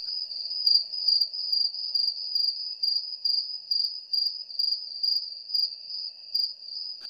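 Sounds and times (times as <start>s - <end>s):
crickets chirping in a meadow: 0.0s - 7.0s.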